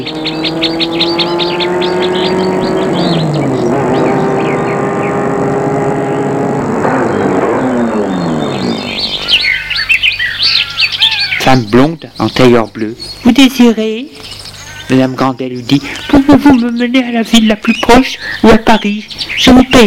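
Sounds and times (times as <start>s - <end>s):
speech: 0.0s - 1.7s, 11.5s - 14.2s, 14.9s - 19.8s
car engine humming and driving past on a road: 0.0s - 9.7s
birds chirping and tweeting: 0.0s - 19.8s.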